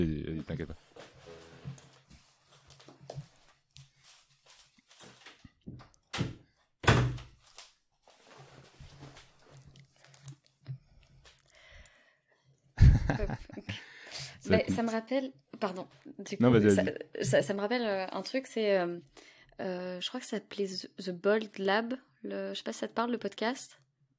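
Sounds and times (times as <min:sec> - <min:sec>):
speech: 0:00.0 - 0:00.8, 0:14.5 - 0:23.8
quiet shuffling and handling noises in a small room: 0:00.5 - 0:05.6, 0:07.4 - 0:11.6
door pushed shut with a firm thud: 0:06.2 - 0:07.4
laughter: 0:12.8 - 0:13.8, 0:14.5 - 0:14.8.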